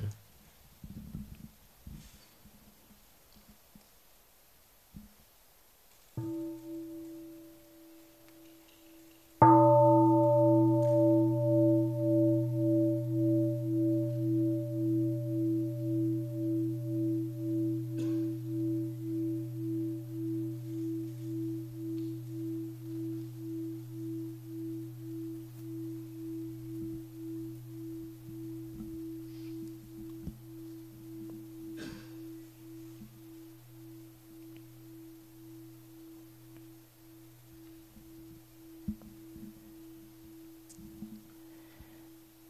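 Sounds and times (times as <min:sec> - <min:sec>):
large singing bowl bell rung as a mindfulness bell: 0:06.2 - 0:36.2.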